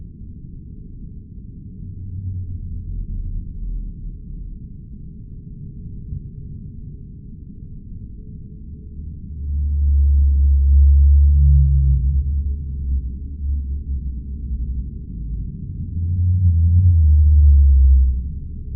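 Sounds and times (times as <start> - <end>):
low background rumble: 0.0 - 18.7
blue whale frequency-modulated calls: 9.4 - 18.3.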